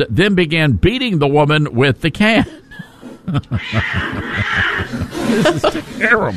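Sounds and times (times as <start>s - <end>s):
speech: 0.0s - 2.6s, 3.3s - 6.3s
laughter: 2.4s - 6.3s
cat yowling: 3.6s - 4.9s.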